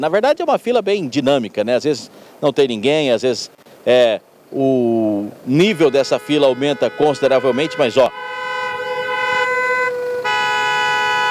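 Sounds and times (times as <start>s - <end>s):
speech: 0.0s - 8.4s
car horns honking in protest at a slow toll plaza in Corbélia: 5.5s - 11.3s.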